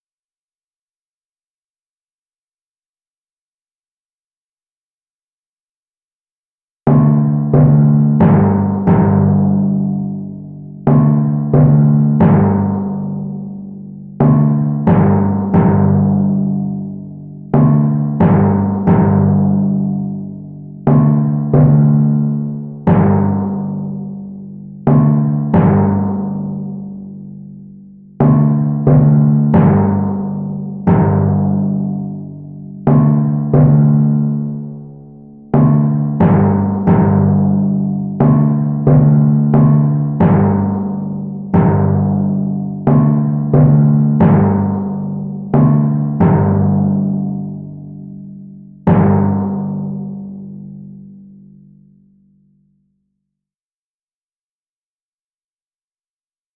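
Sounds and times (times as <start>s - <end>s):
monkey bars struck like timpani: 6.9s - 51.0s.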